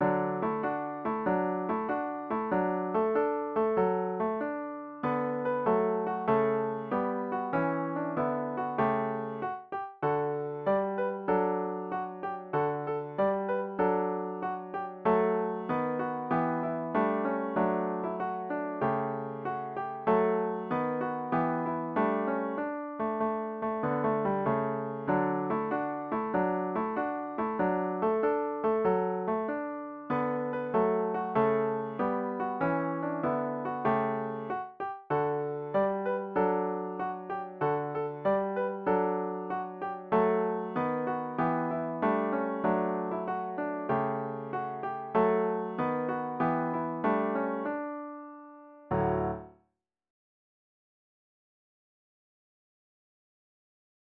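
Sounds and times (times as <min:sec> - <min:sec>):
piano playing a carol: 0:00.0 - 0:49.5.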